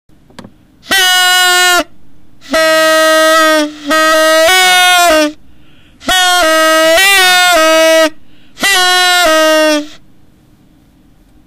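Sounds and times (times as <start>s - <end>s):
Halloween noisemaker horn made in USA: 0.8s - 5.4s, 6.0s - 10.1s.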